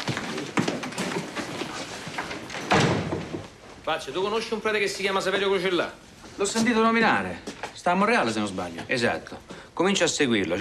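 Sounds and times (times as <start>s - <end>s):
steady hiss of noise: 0.6s - 10.6s
office door being shut: 2.6s - 3.5s
speech: 3.9s - 10.6s.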